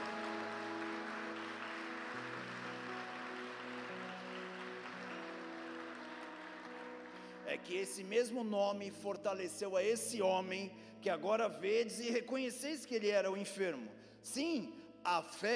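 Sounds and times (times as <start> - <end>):
audience applauding: 0.0 - 8.1
sustained keyboard chords: 0.0 - 11.9
speech: 7.5 - 15.5.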